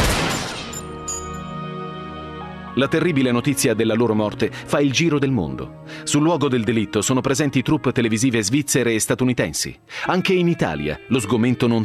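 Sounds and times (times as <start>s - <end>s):
gunshots fired at a car stopped in the road: 0.0s - 0.8s
speech: 2.8s - 11.8s.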